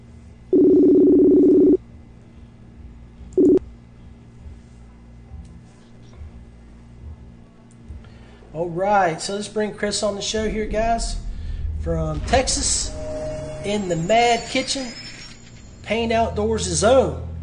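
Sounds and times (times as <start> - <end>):
faint humming background: 0.0 - 17.4
electronic ringback tone of an outgoing video call: 0.5 - 1.8, 3.4 - 3.6
speech: 8.7 - 11.2, 11.8 - 13.0, 13.6 - 15.0, 15.9 - 17.3.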